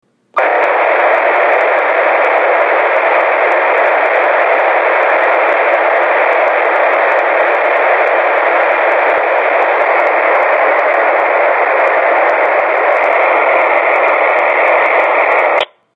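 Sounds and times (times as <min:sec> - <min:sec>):
VSELP raw simplex vocoded digital radio signal: 0:00.4 - 0:15.7.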